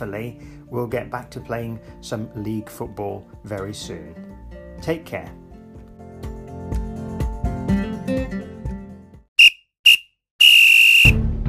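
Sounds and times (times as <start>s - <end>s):
speech: 0.0s - 5.4s
music: 0.0s - 9.3s, 11.1s - 11.4s
referee's final whistle blasts: 9.4s - 11.2s.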